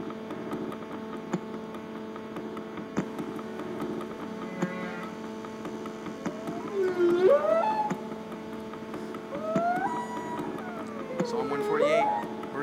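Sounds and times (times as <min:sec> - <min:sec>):
steady low underwater hum: 0:00.0 - 0:12.6
whale song moaning calls: 0:04.4 - 0:05.2, 0:06.2 - 0:08.3, 0:09.3 - 0:12.6.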